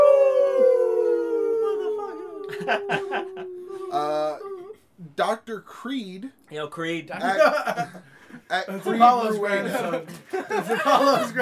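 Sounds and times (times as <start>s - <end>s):
wolf howling: 0.0s - 4.7s
people laughing: 1.6s - 4.7s, 7.1s - 11.3s
speech: 2.6s - 4.5s, 5.2s - 11.3s.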